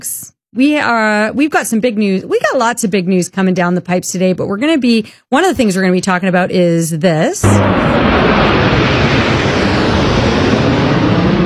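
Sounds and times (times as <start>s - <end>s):
speech: 0.0s - 9.3s
military aerobatic jets flying in formation: 7.4s - 11.4s.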